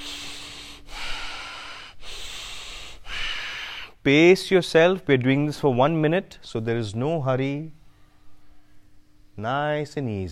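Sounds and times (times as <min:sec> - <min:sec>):
rapid panting breaths in a group breathing exercise at a live workshop in Sweden: 0:00.0 - 0:03.9
speech: 0:04.0 - 0:07.8, 0:09.4 - 0:10.3.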